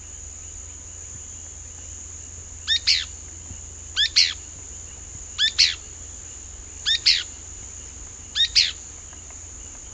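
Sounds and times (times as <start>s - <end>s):
constant hiss: 0.0s - 9.9s
Pale-breasted spinetail Synallaxis albescens josephinae calling: 2.6s - 3.2s, 3.9s - 9.9s.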